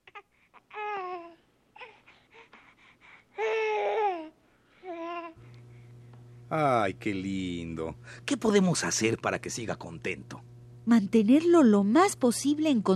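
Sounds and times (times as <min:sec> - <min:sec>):
baby babbling: 0:00.0 - 0:02.1, 0:03.3 - 0:05.4
speech: 0:06.5 - 0:12.9.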